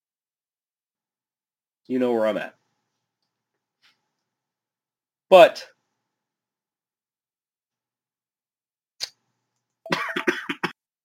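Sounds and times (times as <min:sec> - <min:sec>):
speech: 0:01.9 - 0:02.6, 0:05.3 - 0:05.7
coughing fit: 0:09.9 - 0:10.8.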